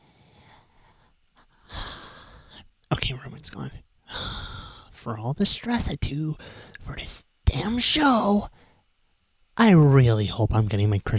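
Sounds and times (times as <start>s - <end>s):
stressed technical-support worker taking a deep breath: 0.0s - 2.7s, 4.1s - 4.9s, 6.4s - 6.8s
low noise: 0.0s - 11.1s
speech: 2.9s - 4.3s, 5.0s - 8.6s, 9.6s - 11.1s.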